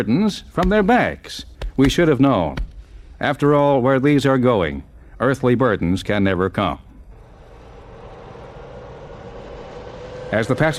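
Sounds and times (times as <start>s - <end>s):
speech: 0.0s - 6.8s, 10.3s - 10.7s
four airplane engines starting one after another: 7.1s - 10.7s.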